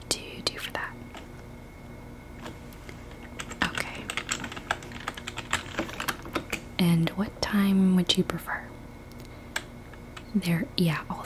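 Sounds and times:
soft computer keyboard typing during a resort check-in: 3.2s - 6.6s
speech: 6.8s - 8.6s, 10.3s - 11.2s.

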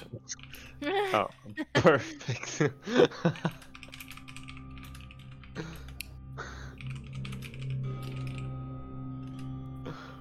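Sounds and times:
speech: 0.2s - 3.7s
laughter: 1.4s - 3.7s
typing on a computer keyboard: 3.4s - 6.0s, 6.8s - 8.5s.

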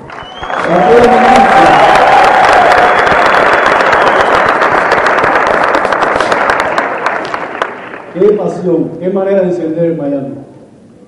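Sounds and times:
cheering: 0.0s - 7.3s
large audience clapping: 0.0s - 8.4s
whistles: 0.1s - 0.8s, 2.7s - 4.6s
speech: 8.6s - 10.4s.

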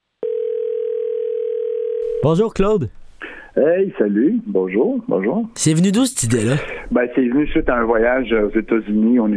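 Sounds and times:
telephone dial tone: 0.2s - 2.2s
speech: 2.2s - 9.3s.

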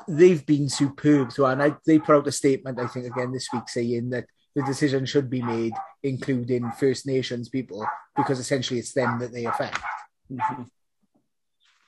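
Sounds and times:
speech: 0.0s - 10.8s
single sharp harmonic dog bark: 0.7s - 2.2s, 2.8s - 3.8s, 4.6s - 6.0s, 6.6s - 6.9s, 7.8s - 8.4s, 9.0s - 10.7s.

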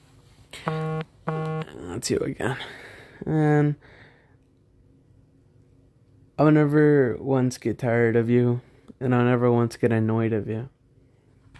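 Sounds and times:
phone vibrating for a post like notification: 0.6s - 1.8s
speech: 2.0s - 4.0s, 6.4s - 10.7s.

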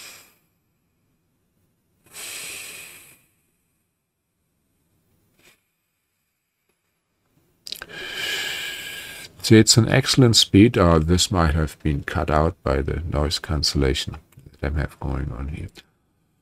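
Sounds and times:
slow breathing through the nostrils during a guided meditation: 2.1s - 3.8s, 5.3s - 7.0s, 7.8s - 9.4s
speech: 9.5s - 15.9s.

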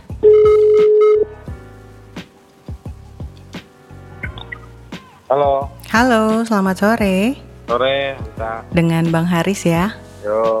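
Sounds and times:
telephone ringing tone: 0.2s - 1.4s
speech: 5.3s - 10.5s.

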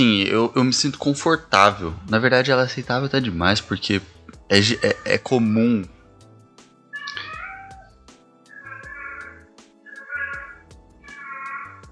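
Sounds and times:
speech: 0.0s - 6.0s
cat meowing: 4.6s - 5.3s, 6.9s - 11.8s.

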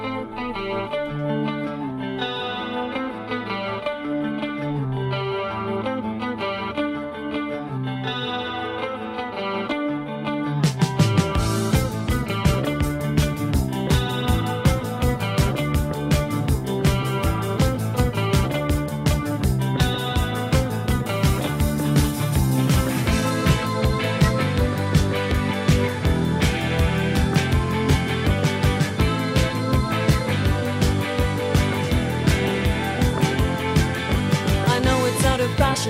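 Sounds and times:
chorus-tinged electric guitar sustained chords: 0.0s - 35.8s
rock song: 0.0s - 35.8s
drums: 10.6s - 35.8s.

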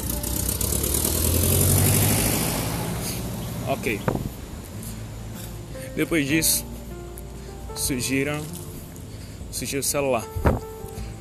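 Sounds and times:
car engine passing by: 0.0s - 6.6s
speech: 3.7s - 4.3s, 6.0s - 6.7s, 7.8s - 8.6s, 9.5s - 10.6s.

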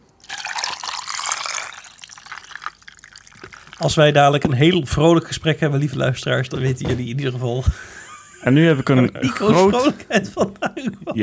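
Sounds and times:
water poured into a glass holding a shot of rum: 0.0s - 4.8s
water dripping: 0.0s - 11.2s
speech: 3.8s - 11.2s
laughter: 3.9s - 11.2s.

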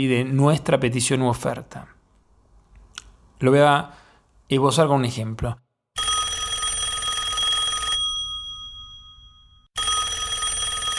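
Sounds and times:
speech: 0.0s - 2.0s, 3.4s - 5.6s
telephone bell ringing: 6.0s - 10.9s.

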